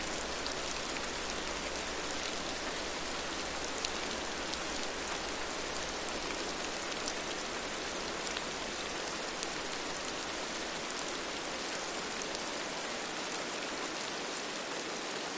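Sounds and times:
steady rain pattering outside: 0.0 - 15.3.

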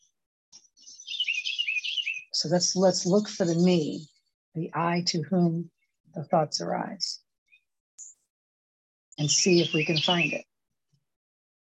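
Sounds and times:
birds chirping outside: 0.6 - 4.3, 9.2 - 10.4
speech: 2.4 - 7.2, 9.2 - 10.5.

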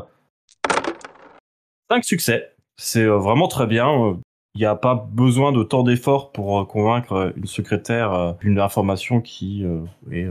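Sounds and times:
handful of dice clattering across a hard surface: 0.6 - 1.4
speech: 1.9 - 10.2.

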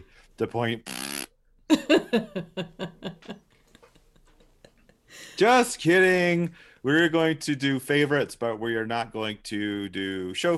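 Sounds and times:
speech: 0.4 - 0.9, 1.7 - 3.4, 5.4 - 10.5
buzzy mouth-fart noises: 0.8 - 1.4
laughter: 1.7 - 4.8.

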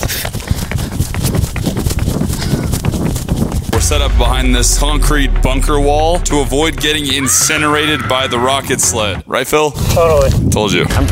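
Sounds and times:
footsteps of a person sprinting a 40-yard dash: 0.0 - 3.8
constant wind buffeting: 0.3 - 11.1
speech: 4.2 - 11.1.

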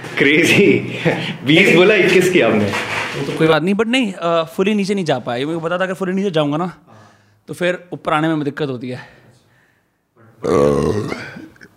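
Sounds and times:
speech: 0.2 - 6.9, 7.5 - 9.2, 10.4 - 11.7
loud drawn-out burp: 10.3 - 11.7.

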